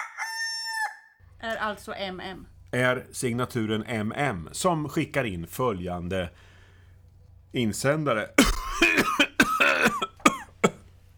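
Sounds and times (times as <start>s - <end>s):
speech: 1.4s - 6.5s, 7.5s - 9.1s
harsh rasping coughs with a throaty voiced tail: 8.4s - 10.9s.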